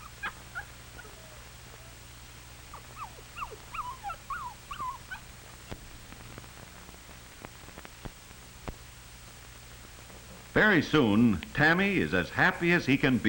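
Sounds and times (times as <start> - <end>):
homesick puppy whimpering: 0.0 - 2.1, 2.7 - 5.3
low steady hum: 0.0 - 13.2
speech: 10.6 - 13.2.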